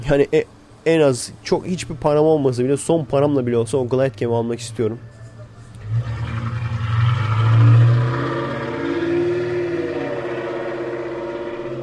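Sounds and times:
speech: 0.1 - 5.2
family car engine revving: 5.7 - 11.8.

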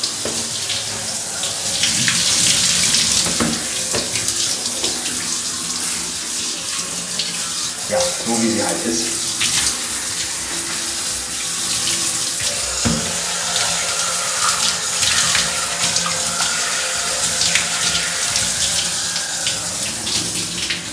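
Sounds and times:
shower water running: 0.0 - 20.9
speech: 8.8 - 9.2.

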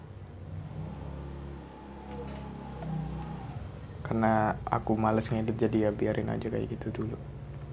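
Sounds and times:
motorbike engine passing by: 0.0 - 5.3
speech: 4.1 - 7.4.

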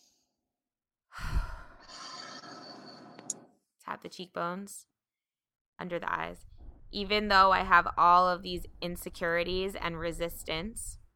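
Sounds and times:
deep breath: 1.1 - 2.2
speech: 3.9 - 4.9, 5.8 - 11.0.

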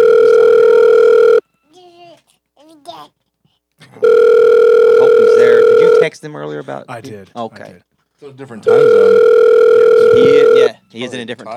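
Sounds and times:
telephone dial tone while a call is dialed: 0.0 - 1.4, 4.0 - 6.1, 8.7 - 10.7
child babbling: 1.7 - 3.2
speech: 6.3 - 11.5.

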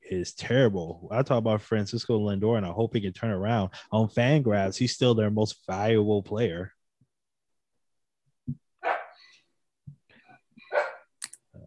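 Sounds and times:
speech: 0.1 - 6.8
dog barking at a food delivery: 8.8 - 9.2, 10.6 - 11.1.

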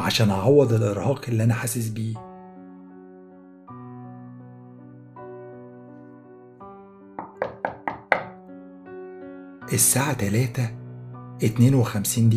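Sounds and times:
speech: 0.0 - 2.3, 9.7 - 10.8, 11.4 - 12.3
knocking on a door: 7.2 - 8.4.

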